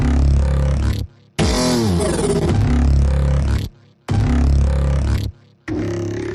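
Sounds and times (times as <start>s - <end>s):
synthesizers playing: 0.1s - 6.3s.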